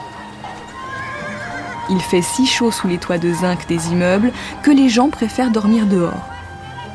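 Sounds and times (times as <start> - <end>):
carriage horse hooves clip-clopping in Paris: 0.0 - 6.9
carriage horse neighing in Paris during the August 1911 heatwave: 0.4 - 3.3
speech: 1.9 - 6.3.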